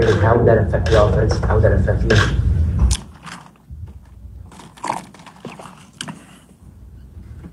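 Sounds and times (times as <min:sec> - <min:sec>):
speech: 0:00.0 - 0:02.5
low rumble: 0:00.0 - 0:03.0, 0:03.7 - 0:04.5
plastic water bottle crinkling during handling: 0:03.0 - 0:06.6
person sipping water from a plastic bottle: 0:04.5 - 0:06.6.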